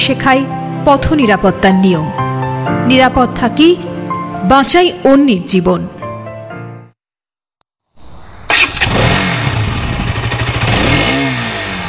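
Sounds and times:
speech: 0.1 - 2.2, 2.8 - 6.0
motorcycle engine revving: 8.0 - 11.8.

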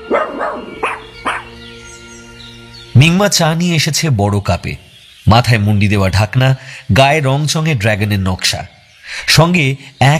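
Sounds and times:
dog barking in a courtyard: 0.0 - 1.6
speech: 3.0 - 10.1.

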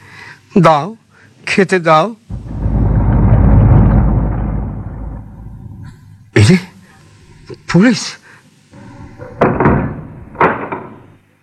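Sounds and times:
speech: 0.6 - 2.2, 7.7 - 8.2
bedroom door slamming shut: 2.3 - 6.3, 8.8 - 11.0.

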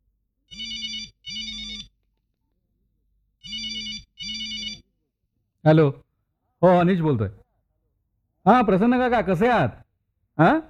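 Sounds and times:
electronic telephone ringing: 0.5 - 2.0, 3.4 - 4.9
speech: 5.6 - 6.0, 6.6 - 7.4, 8.4 - 9.8, 10.4 - 10.6.

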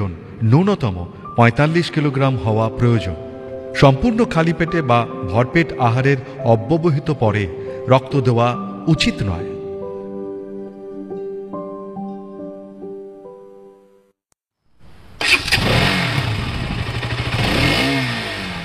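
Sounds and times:
speech: 0.1 - 9.5
motorcycle engine revving: 15.2 - 18.6.

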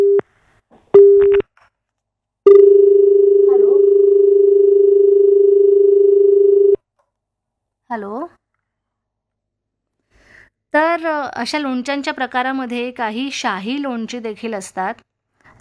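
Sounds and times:
telephone line tones as an incoming caller is connected to a call-in show: 0.0 - 0.2, 2.5 - 6.8
speech: 8.0 - 8.4, 10.7 - 15.6.

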